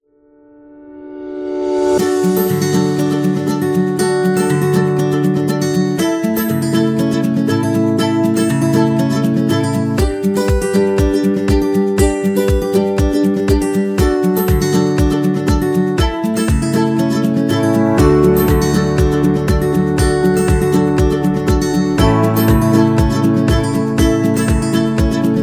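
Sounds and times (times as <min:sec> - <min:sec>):
acoustic guitar: 0:00.4 - 0:25.4.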